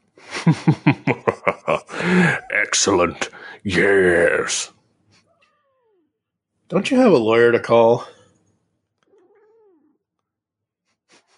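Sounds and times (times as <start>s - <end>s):
laughter: 0.2s - 3.3s
speech: 0.5s - 1.1s, 2.7s - 4.8s, 6.7s - 8.2s
cat meowing: 5.3s - 6.2s, 9.0s - 10.0s.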